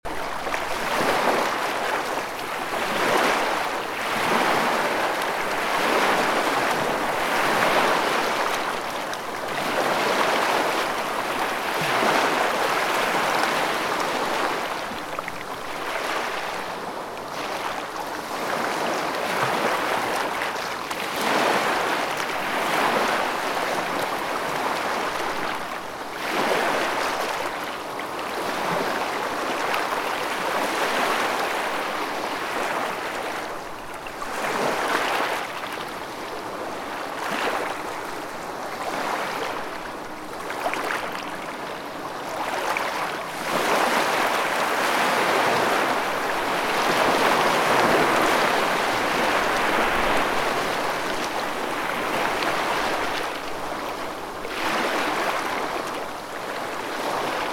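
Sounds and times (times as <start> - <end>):
ocean waves: 0.0 - 57.5.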